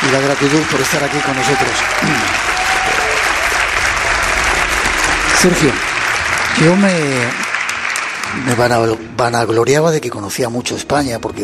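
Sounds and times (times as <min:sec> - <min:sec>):
audience applause for a guest at a talk: 0:00.0 - 0:09.0
speech: 0:00.1 - 0:02.6, 0:05.4 - 0:05.9, 0:06.5 - 0:07.4, 0:08.3 - 0:11.4.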